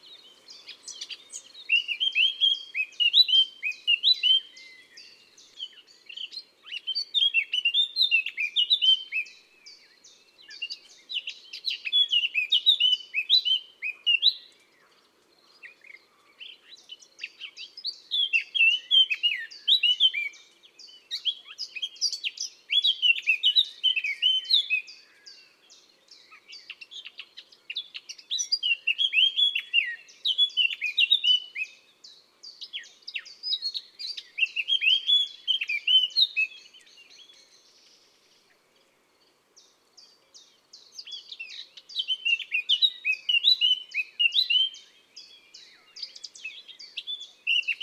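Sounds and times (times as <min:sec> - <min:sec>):
Eurasian blackcap singing in woods and forests: 0:00.0 - 0:47.8.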